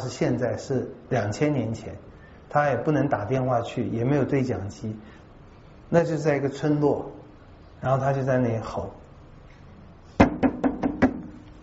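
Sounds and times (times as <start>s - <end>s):
speech: 0.0s - 5.2s, 5.9s - 7.2s, 7.8s - 9.0s
faint hum: 0.0s - 11.6s
knocking on a dormitory door: 10.2s - 11.4s.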